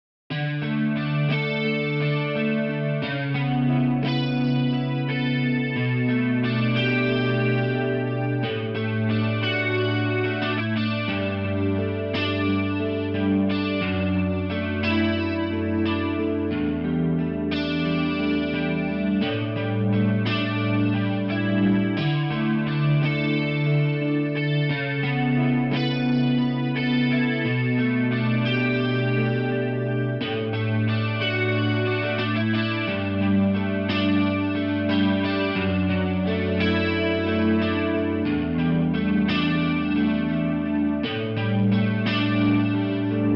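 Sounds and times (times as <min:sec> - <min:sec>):
electric guitar: 0:00.3 - 0:43.3.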